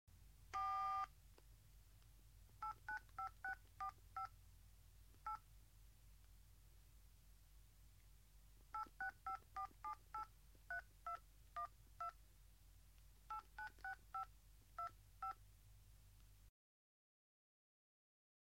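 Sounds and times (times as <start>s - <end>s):
cell phone: 0.5s - 1.1s, 2.6s - 4.4s, 5.2s - 5.4s, 8.7s - 12.2s, 13.3s - 15.4s.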